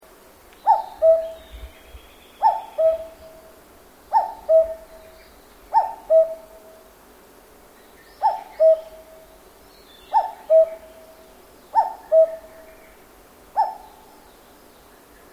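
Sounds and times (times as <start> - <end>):
cuckoo calling in a forest in Japan: 0.6 - 6.8, 8.1 - 9.4, 10.0 - 13.0, 13.6 - 14.3.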